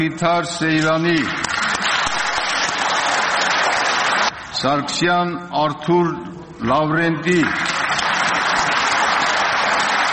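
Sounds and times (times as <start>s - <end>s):
speech: 0.0s - 1.6s, 4.6s - 7.7s
applause from standing parliament deputies in the chamber: 0.8s - 4.6s, 7.4s - 10.1s.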